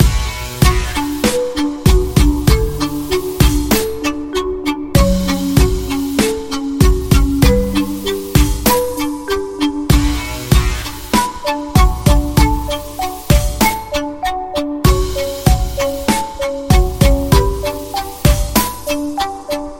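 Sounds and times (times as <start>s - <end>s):
electric violin: 0.0s - 19.7s.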